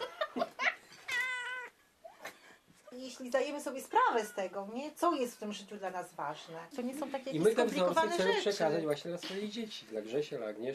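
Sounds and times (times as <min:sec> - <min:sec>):
cat meowing: 0:01.0 - 0:01.8
speech: 0:03.0 - 0:10.7.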